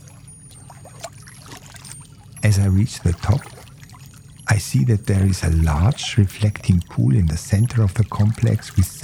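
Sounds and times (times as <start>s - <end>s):
water flowing and trickling on a hill by a monkey temple: 0.0s - 9.0s
speech: 2.4s - 3.6s, 4.5s - 9.0s.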